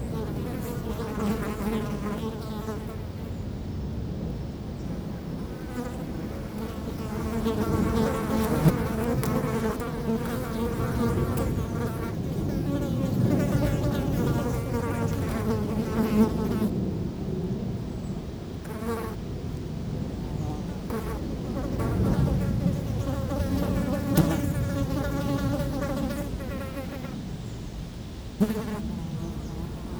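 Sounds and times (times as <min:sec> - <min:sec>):
flies buzzing while feasting on a dropping: 0:00.0 - 0:03.4, 0:04.9 - 0:16.7, 0:20.2 - 0:27.2, 0:28.4 - 0:29.9
low wind noise on a windy day: 0:00.0 - 0:29.9.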